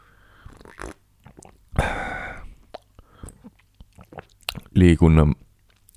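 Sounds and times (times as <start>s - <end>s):
soft breathing: 0.0s - 0.6s, 1.8s - 3.6s
person sipping hot coffee: 0.4s - 1.6s, 2.7s - 4.6s
swallow: 0.4s - 4.7s
mouth clicks: 0.5s - 4.7s
speech: 4.8s - 5.4s.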